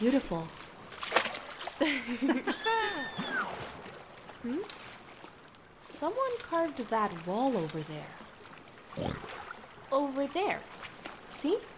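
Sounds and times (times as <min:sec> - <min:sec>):
speech: 0:00.0 - 0:00.7, 0:01.8 - 0:03.8, 0:04.4 - 0:04.8, 0:06.0 - 0:08.2, 0:09.0 - 0:09.3, 0:09.9 - 0:11.7
people splashing in water: 0:00.8 - 0:09.8.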